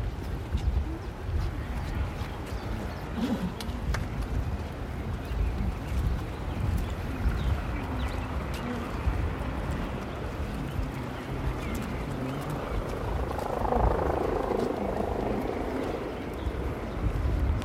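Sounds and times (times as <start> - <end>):
faint sounds: 0.1 - 17.6
yellow rescue helicopter rotor droning while circling overhead: 8.4 - 17.4.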